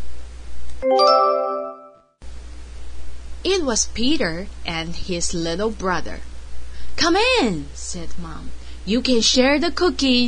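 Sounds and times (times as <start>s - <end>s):
doorbell ding-dong chime: 0.8s - 2.0s
speech: 3.5s - 6.3s, 7.0s - 10.2s.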